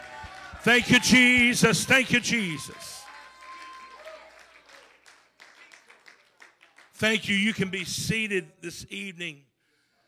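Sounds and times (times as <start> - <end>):
church audience cheering at a worship service: 0.0 - 5.9
church audience clapping at a worship service: 0.0 - 7.8
speech: 0.6 - 3.0, 7.0 - 9.5.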